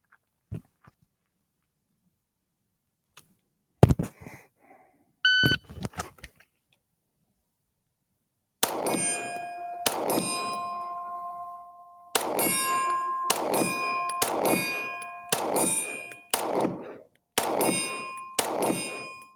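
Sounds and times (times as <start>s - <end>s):
shot timer electronic start beep: 5.3s - 5.6s, 8.6s - 16.8s, 17.4s - 19.3s
longer ringing clattering: 8.6s - 16.8s, 17.4s - 19.3s
sharp metallic clanks and impacts: 8.6s - 16.8s, 17.4s - 19.3s.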